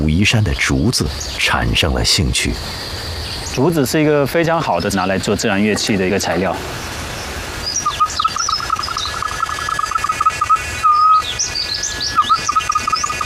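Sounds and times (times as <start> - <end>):
speech: 0.2 - 3.0, 3.6 - 6.9
whistled imitation of bird calls: 7.6 - 13.2.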